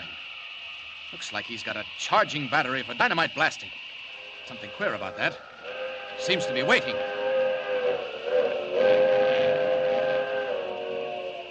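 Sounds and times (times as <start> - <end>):
speech: 1.1 - 3.9, 4.5 - 5.5, 6.2 - 7.2
approaching train's steam whistle blowing a sustained chord: 4.2 - 11.4.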